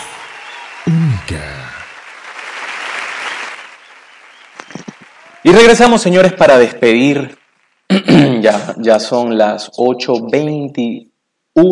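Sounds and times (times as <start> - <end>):
crowd applauding: 0.0 - 7.9
speech: 0.9 - 1.8, 5.4 - 11.7.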